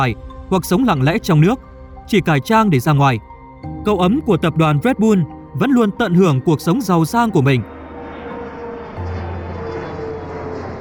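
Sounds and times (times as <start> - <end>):
speech: 0.0 - 7.7
jet aircraft engine roar flying overhead: 7.6 - 10.7.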